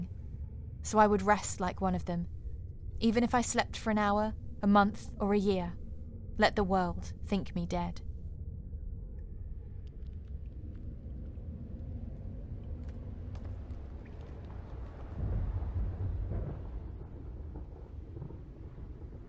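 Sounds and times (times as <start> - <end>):
speech: 0.9 - 2.4, 3.0 - 5.8, 6.4 - 8.1
deep ferocious thunder rumbling in a storm at a sea cliff: 11.6 - 19.2.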